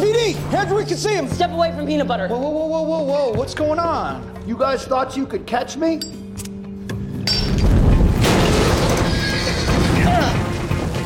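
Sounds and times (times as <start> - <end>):
speech: 0.6 - 6.2
dense rumbling commotion: 7.5 - 11.0
horse neighing: 8.9 - 10.5.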